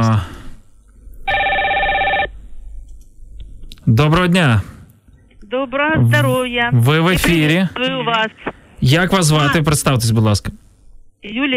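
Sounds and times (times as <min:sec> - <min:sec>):
telephone ringing with an electronic tone: 0:01.3 - 0:02.3
speech: 0:03.9 - 0:04.7, 0:05.5 - 0:10.6, 0:11.2 - 0:11.5.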